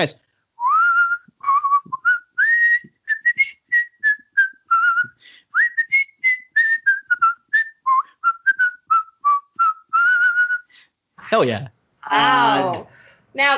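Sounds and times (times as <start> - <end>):
speech: 0.0 - 0.2, 11.4 - 13.5
person whistling a cheerful holiday tune: 0.6 - 10.7
person breathing between whistled phrases: 5.2 - 5.6, 10.7 - 11.0, 12.8 - 13.4.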